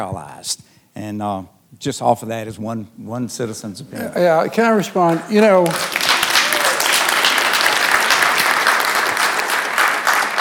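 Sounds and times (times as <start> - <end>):
speech: 0.0 - 6.1
sustained applause from a sizable crowd: 5.0 - 10.4.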